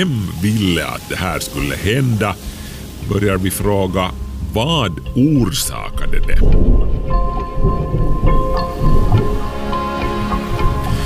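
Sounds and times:
speech: 0.0 - 7.8
low thunder rumbling: 0.0 - 11.0
steady rain: 0.0 - 11.0.

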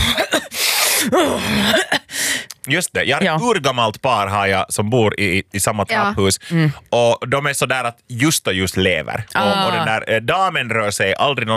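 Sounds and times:
person imitating a man sniffling: 0.0 - 2.2
speech: 1.1 - 2.0, 2.6 - 11.5.

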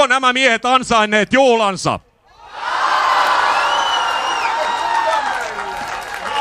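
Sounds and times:
speech: 0.0 - 2.1
large outdoor crowd cheering at a medal celebration on a central square: 2.3 - 6.4
whoops and shouts from a large outdoor crowd: 2.3 - 6.4.

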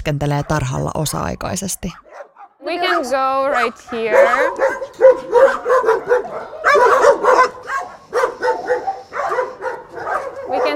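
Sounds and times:
speech: 0.0 - 7.6, 10.6 - 10.7
dogs barking, yipping and whimpering at a dog shelter: 0.0 - 10.7.

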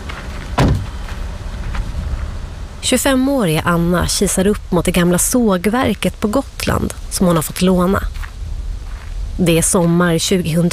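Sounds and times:
steady outdoor hum outside an old sawmill in summer: 0.0 - 10.7
car door slamming shut with a solid thud: 0.6 - 0.9
speech: 2.8 - 8.2, 9.4 - 10.7.

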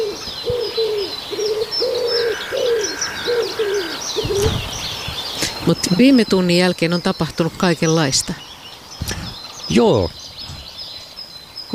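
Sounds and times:
common wood pigeon song in spring in Lohja Finland: 0.0 - 5.6
small birds chirping and twittering: 0.0 - 11.7
speech: 5.7 - 9.1, 9.7 - 10.2.

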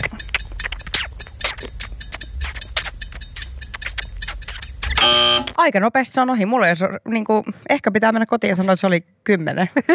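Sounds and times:
clock ticking: 0.0 - 5.6
speech: 5.6 - 9.9.

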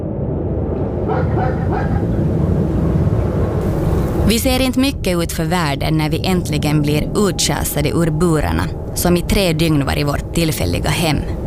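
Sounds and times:
loud steady low rumble: 0.0 - 11.4
dog from Moscow barking and yipping at Baikonur: 1.1 - 2.1
speech: 4.3 - 11.4.

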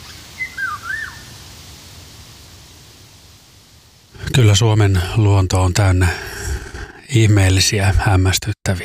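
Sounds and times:
quiet steady hiss: 0.0 - 8.8
Eurasian golden oriole singing: 0.4 - 1.2
speech: 4.4 - 6.3, 7.1 - 8.8.

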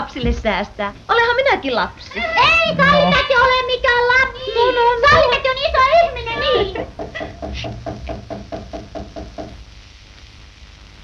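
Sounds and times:
speech: 0.1 - 8.2
firm knocking on a wooden door: 6.7 - 9.6.

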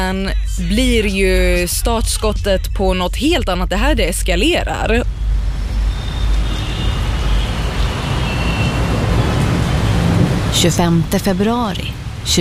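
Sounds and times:
low rumbling city backdrop: 0.0 - 12.4
speech: 0.1 - 5.2, 10.6 - 12.4
rain on Manhattan streets: 5.3 - 11.1, 11.8 - 12.4.

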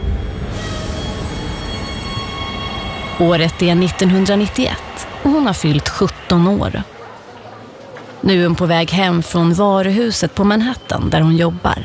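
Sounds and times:
bright metallic whine of a subway train: 0.0 - 5.2
subway train rumbling in a station in Brooklyn: 0.0 - 11.8
speech: 3.2 - 6.9, 8.2 - 11.8.

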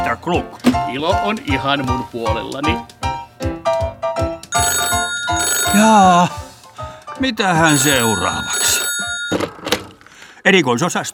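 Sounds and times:
speech: 0.1 - 3.8, 5.7 - 6.4, 7.2 - 8.6, 10.4 - 11.1
electronic telephone ringtone: 4.6 - 6.5, 7.6 - 9.6.

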